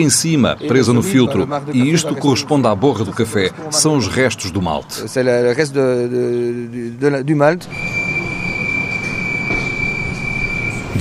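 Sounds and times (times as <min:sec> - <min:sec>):
speech: 0:00.0 - 0:08.0
high sustained train wheel squeal: 0:07.6 - 0:10.9
wavering tonal whines: 0:07.6 - 0:10.9.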